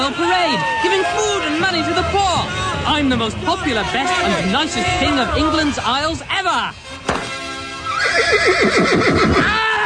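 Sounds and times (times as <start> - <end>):
speech: 0.0 - 6.9, 8.2 - 9.7
horse whinnying: 7.8 - 9.6.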